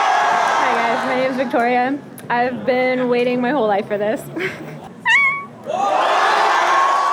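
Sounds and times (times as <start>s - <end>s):
crowd cheering and shouting: 0.0s - 1.5s, 5.1s - 7.1s
speech: 1.4s - 4.8s
meowing: 5.1s - 5.5s.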